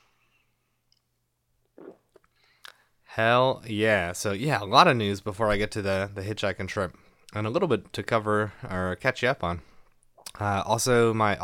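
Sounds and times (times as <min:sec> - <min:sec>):
slurp and swallow of beer: 0:01.7 - 0:02.3
small mouth clicks: 0:01.7 - 0:02.8, 0:10.2 - 0:10.4
speech: 0:03.2 - 0:09.7, 0:10.3 - 0:11.4.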